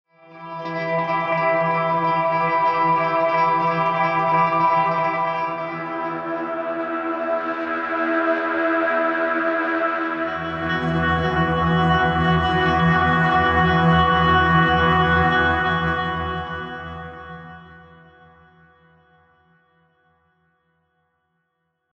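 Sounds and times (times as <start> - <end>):
ambient guitar beds and drones: 0.2 - 19.1.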